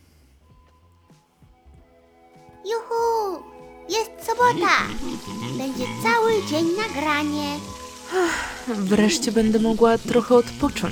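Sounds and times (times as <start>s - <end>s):
speech: 2.6s - 10.8s
scrambled eggs sizzling and crackling in a hot pan: 3.7s - 10.8s.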